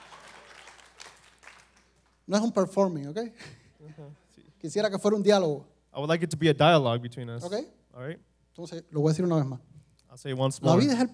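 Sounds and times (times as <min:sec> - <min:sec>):
audience applause: 0:00.0 - 0:02.2
speech: 0:02.3 - 0:11.1.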